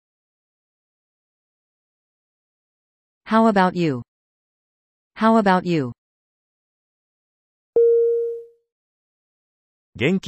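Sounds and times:
speech: 0:03.3 - 0:04.1, 0:05.2 - 0:06.0, 0:10.0 - 0:10.2
chime-like start cue tone: 0:07.8 - 0:08.5.

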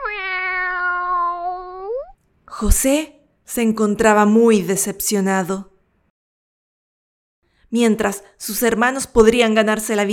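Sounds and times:
long drawn-out cat meow: 0:00.0 - 0:02.2
speech: 0:02.6 - 0:05.7, 0:07.7 - 0:10.1.

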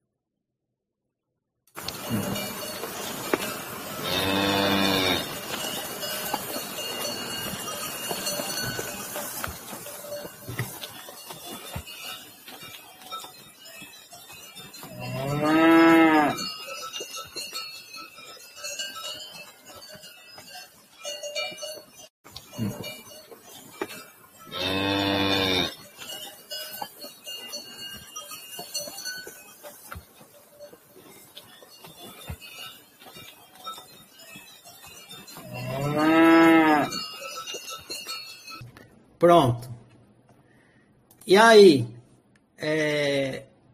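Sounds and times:
faint outdoor noise: 0:01.8 - 0:43.7
speech: 0:02.1 - 0:02.6, 0:41.3 - 0:41.9
cow mooing: 0:04.0 - 0:05.4, 0:14.9 - 0:16.4, 0:24.5 - 0:25.8, 0:35.5 - 0:37.0.

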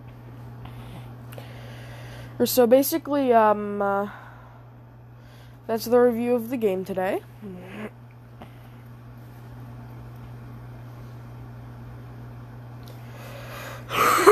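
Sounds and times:
steady low electrical hum: 0:00.0 - 0:14.3
speech: 0:02.4 - 0:04.2, 0:05.7 - 0:07.7
person coughing and clearing mucus from throat: 0:13.9 - 0:14.3.

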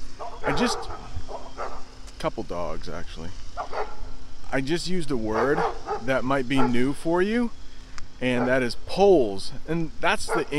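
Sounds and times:
outdoor noise: 0:00.0 - 0:10.5
dog barking: 0:00.2 - 0:01.8, 0:03.6 - 0:04.1, 0:05.3 - 0:07.0, 0:08.3 - 0:08.7, 0:10.2 - 0:10.5
speech: 0:00.6 - 0:01.0, 0:02.2 - 0:07.6, 0:08.2 - 0:10.5.

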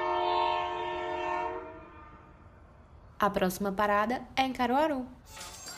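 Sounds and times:
train horn blast: 0:00.0 - 0:02.4
speech: 0:03.2 - 0:05.6.

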